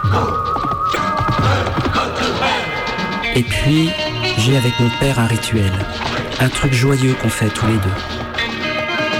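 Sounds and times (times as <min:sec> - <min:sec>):
horse hooves galloping on a track: 0:00.0 - 0:02.7, 0:04.5 - 0:09.1
speech: 0:03.4 - 0:08.3.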